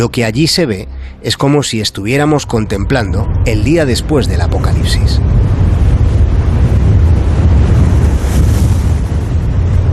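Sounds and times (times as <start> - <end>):
speech: 0.0 - 5.6
wind blowing through weeds: 5.2 - 9.9.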